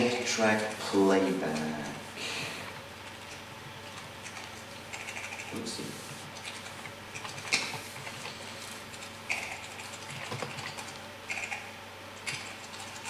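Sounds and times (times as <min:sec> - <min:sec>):
quiet hum: 0:00.0 - 0:13.0
speech: 0:00.2 - 0:02.5
keystrokes on a computer keyboard: 0:04.2 - 0:05.6, 0:08.9 - 0:13.0.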